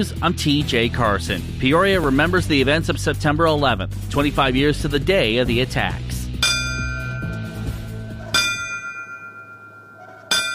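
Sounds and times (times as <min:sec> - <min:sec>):
speech: 0:00.0 - 0:06.1
ceremonial bells ringing for fallen firefighters: 0:06.4 - 0:10.5.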